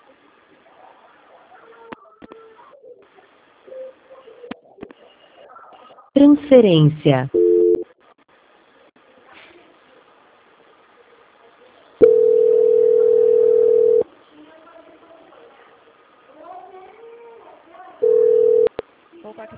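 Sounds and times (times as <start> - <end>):
speech: 6.2 - 7.4
telephone dial tone after a dropped call: 12.0 - 14.0, 18.0 - 18.8.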